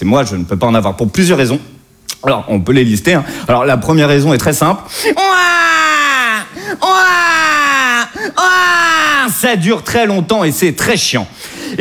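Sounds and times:
speech: 0:00.0 - 0:05.8, 0:08.2 - 0:11.8
baby wailing loudly: 0:04.9 - 0:09.4.

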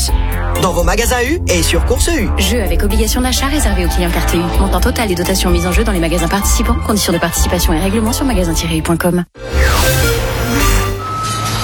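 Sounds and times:
speech: 0:00.1 - 0:09.5
large truck reversing with electronic warning beeps: 0:09.6 - 0:11.6.

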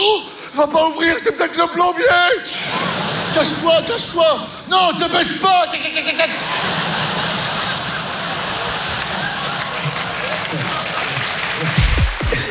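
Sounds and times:
speech: 0:00.6 - 0:07.2
laughter: 0:02.0 - 0:12.5
murmuring: 0:02.4 - 0:12.5
large audience applause: 0:06.3 - 0:12.5.

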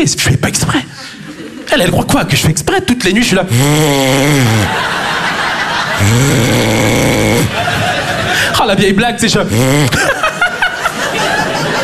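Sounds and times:
speech: 0:00.0 - 0:00.9, 0:01.7 - 0:05.1, 0:06.0 - 0:07.8, 0:08.6 - 0:10.2
laughter: 0:00.9 - 0:02.6, 0:04.4 - 0:11.8
voice imitating snoring with rasping throaty snorts: 0:03.4 - 0:04.8, 0:05.9 - 0:07.6, 0:09.4 - 0:10.1.

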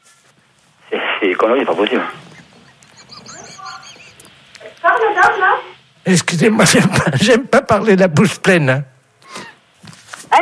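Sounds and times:
speech: 0:01.2 - 0:02.3, 0:05.1 - 0:08.9
laughter: 0:02.0 - 0:04.5, 0:06.6 - 0:07.4
seagull squawking: 0:02.2 - 0:04.3.

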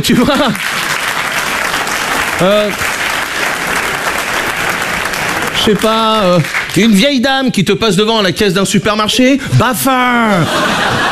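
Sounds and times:
speech: 0:00.0 - 0:00.9, 0:02.4 - 0:02.9, 0:05.6 - 0:11.0
laughter: 0:00.0 - 0:01.0, 0:10.2 - 0:11.0
audience applause: 0:00.2 - 0:07.0.

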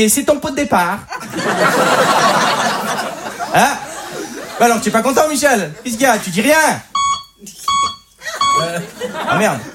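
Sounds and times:
speech: 0:00.0 - 0:03.8, 0:04.6 - 0:07.6, 0:08.6 - 0:09.7
laughter: 0:01.1 - 0:06.7, 0:08.2 - 0:09.7
short electronic beeps: 0:06.9 - 0:08.7.

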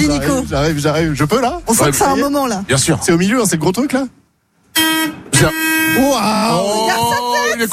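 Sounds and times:
speech: 0:00.0 - 0:04.2, 0:04.8 - 0:07.7
bus horn honking: 0:04.7 - 0:07.6.

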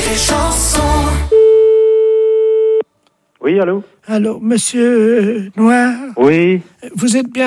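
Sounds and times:
speech: 0:00.2 - 0:01.4, 0:03.4 - 0:07.4
telephone line beeps during an outgoing call: 0:01.3 - 0:02.8.

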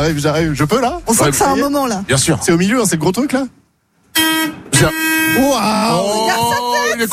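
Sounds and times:
speech: 0:00.0 - 0:03.6, 0:04.2 - 0:07.1
bus horn blaring in Strasbourg: 0:04.1 - 0:07.1.

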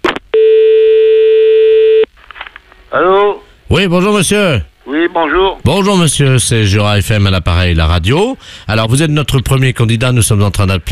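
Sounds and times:
buzzing telephone line tone after the caller hangs up: 0:00.3 - 0:02.1
speech: 0:03.7 - 0:10.8.

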